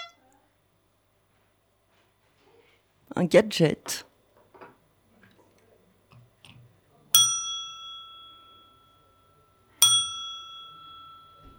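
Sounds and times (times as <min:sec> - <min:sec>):
speech: 0:03.2 - 0:04.1
small bell dinging: 0:07.1 - 0:11.5.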